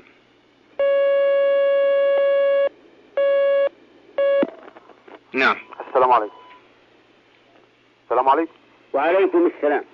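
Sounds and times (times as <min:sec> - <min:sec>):
telephone line tone as a caller joins a call-in line: 0:00.8 - 0:04.4
speech: 0:05.4 - 0:06.4, 0:08.1 - 0:09.9.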